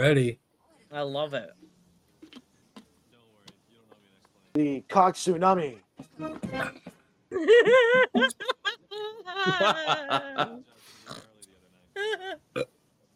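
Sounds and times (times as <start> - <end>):
speech: 0.0 - 1.6, 4.6 - 11.3, 12.0 - 12.8
person burping: 6.4 - 6.9, 11.1 - 11.3
guttural vocal sounds: 6.6 - 6.9, 11.0 - 12.7
laughter: 7.4 - 10.6.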